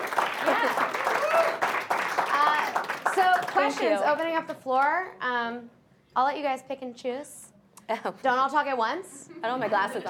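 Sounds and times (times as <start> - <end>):
audience applause: 0.0 - 4.0
faint voices and cheers of an audience: 0.6 - 1.6
speech: 3.6 - 10.0.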